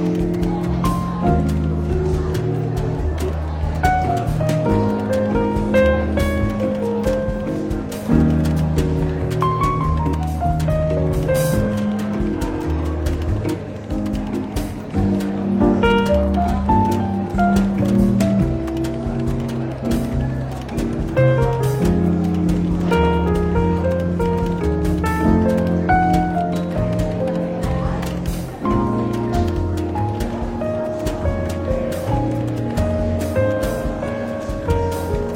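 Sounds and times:
faint murmur of conversation: 0.0s - 35.3s
soft jazz with walking bass and mellow chords in a bookshop café: 0.0s - 35.3s.

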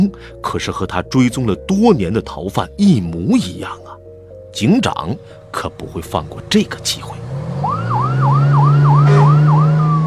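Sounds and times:
speech: 0.0s - 7.3s
steady low engine hum: 5.4s - 10.0s
police car siren wailing in rapid sweeps: 7.4s - 10.0s.

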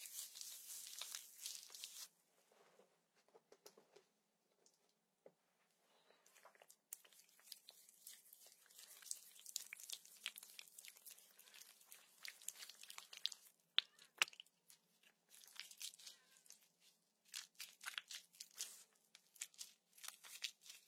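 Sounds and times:
slime squelching and crackling against socked feet: 0.0s - 2.1s, 6.2s - 20.8s.

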